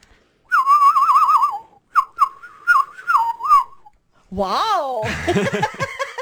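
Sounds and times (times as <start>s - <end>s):
person whistling imitating a bird call: 0.5s - 3.9s
speech: 4.3s - 5.8s
laughter: 5.0s - 6.1s.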